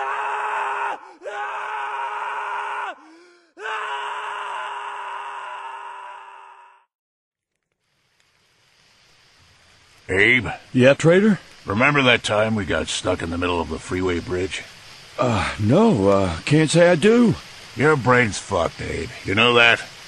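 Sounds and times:
distant human screams: 0:00.0 - 0:06.9
faint airy hiss: 0:07.7 - 0:20.0
speech: 0:10.1 - 0:19.8.

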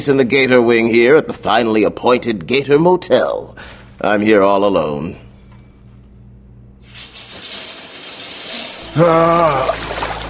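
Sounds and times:
speech: 0:00.0 - 0:05.2, 0:09.0 - 0:10.0
shower water running: 0:06.8 - 0:10.2.

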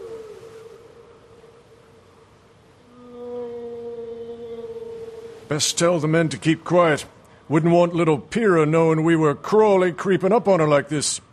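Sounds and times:
long sustained tonal moans: 0:00.0 - 0:02.2, 0:02.8 - 0:06.3
speech: 0:05.5 - 0:11.3.

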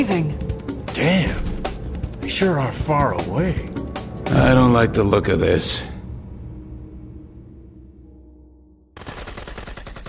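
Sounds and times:
speech: 0:00.0 - 0:00.4, 0:01.0 - 0:01.5, 0:02.3 - 0:03.7, 0:04.3 - 0:05.9
rifle fire from a ship's tower in a marshland: 0:09.0 - 0:10.0.

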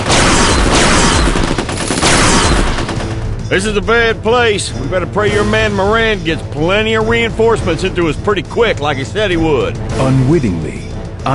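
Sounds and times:
heavy gunfire in a rainforest jungle firefight: 0:00.0 - 0:03.3
speech: 0:03.5 - 0:11.3.

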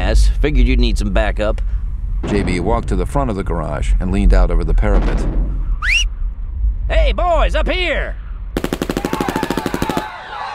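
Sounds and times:
speech: 0:00.1 - 0:06.1, 0:06.9 - 0:08.2
rapid automatic gunfire from the street: 0:08.6 - 0:10.2.

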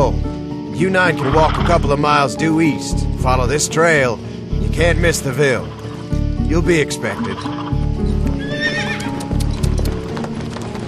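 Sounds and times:
speech: 0:00.8 - 0:05.8, 0:06.5 - 0:07.6
horse whinnying: 0:01.1 - 0:01.9, 0:07.2 - 0:09.6
horse hooves clip-clopping in a trot: 0:07.4 - 0:10.8.

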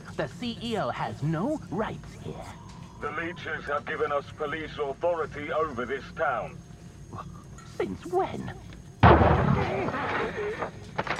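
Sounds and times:
speech: 0:00.2 - 0:11.0
single loud heavy gunshot: 0:09.0 - 0:10.2.

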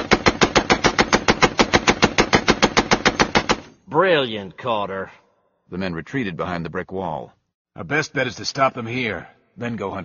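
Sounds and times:
machine gun fire ripping up a doorway: 0:00.0 - 0:03.7
speech: 0:03.9 - 0:10.0.

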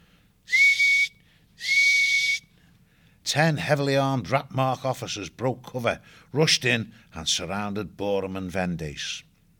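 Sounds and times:
sharp blasts on a bone whistle: 0:00.5 - 0:02.5
speech: 0:03.3 - 0:09.3.

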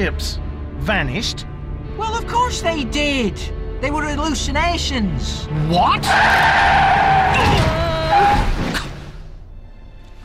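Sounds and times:
speech: 0:00.0 - 0:07.7
car skidding with its handbrake pulled, tires squealing: 0:06.0 - 0:07.5.

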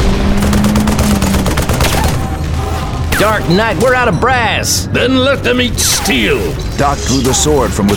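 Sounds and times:
Napoleon cannon firing 6-pound iron cannonballs from fieldstone bunkers: 0:00.0 - 0:04.0
dense battle gunfire crackling in rapid bursts: 0:00.0 - 0:04.0
speech: 0:03.2 - 0:07.9.

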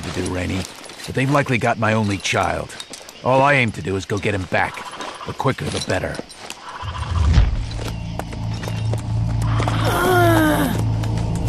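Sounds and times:
horse carrying a person clip-clopping: 0:00.0 - 0:09.9, 0:10.5 - 0:11.4
speech: 0:00.2 - 0:06.3
low rumbling background: 0:06.9 - 0:11.4.

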